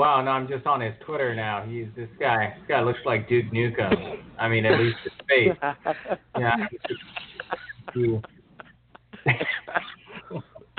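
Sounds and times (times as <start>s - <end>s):
speech: 0.0s - 8.3s, 9.2s - 10.7s
person coughing while laughing: 3.9s - 5.2s, 6.4s - 10.2s.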